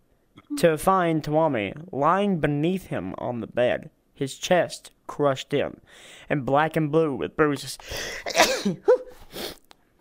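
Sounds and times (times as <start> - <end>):
speech: 0.5 - 9.6
wheezy breath: 7.8 - 8.3, 9.1 - 9.6
person sneezing: 8.0 - 9.6
soft sniff: 9.1 - 9.6.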